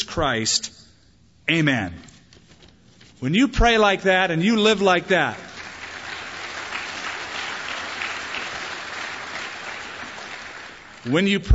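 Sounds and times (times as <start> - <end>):
speech: 0.2 - 0.9, 1.5 - 2.1, 3.2 - 5.5, 11.0 - 11.5
church congregation applauding a man: 4.3 - 11.5.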